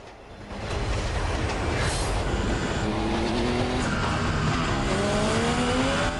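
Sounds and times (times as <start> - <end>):
moving train rumbling: 0.0 - 6.1
two motorbike engines roaring and revving at high speed: 2.3 - 6.1.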